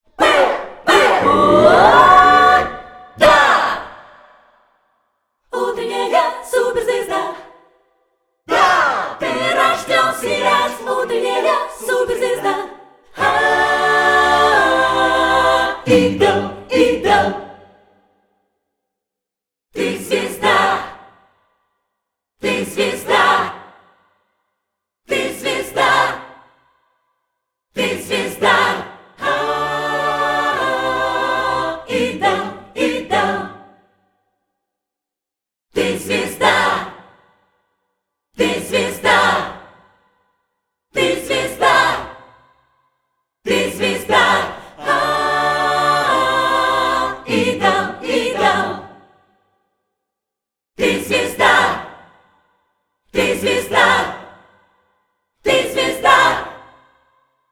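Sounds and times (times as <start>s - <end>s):
choirs singing: 0.0s - 4.6s, 5.5s - 7.7s, 8.5s - 18.1s, 19.8s - 21.3s, 22.4s - 24.1s, 25.1s - 26.6s, 27.8s - 34.0s, 35.7s - 37.4s, 38.4s - 40.2s, 41.0s - 42.5s, 43.5s - 49.4s, 50.8s - 52.5s, 53.1s - 54.8s, 55.4s - 57.0s.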